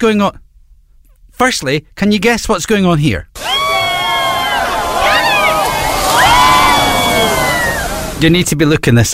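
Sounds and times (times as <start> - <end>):
speech: 0.0 - 0.4, 1.4 - 3.5, 8.2 - 9.1
large crowd cheering and whooping outdoors at dog surfing contest: 3.4 - 8.2.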